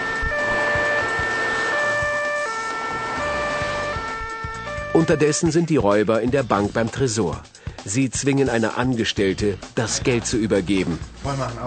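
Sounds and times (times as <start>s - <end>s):
patrol car engine noise: 0.0s - 4.9s
traffic rumble: 0.0s - 5.0s
police patrol car sirens wailing in two-tone bursts: 0.0s - 5.4s
speech: 5.0s - 11.6s.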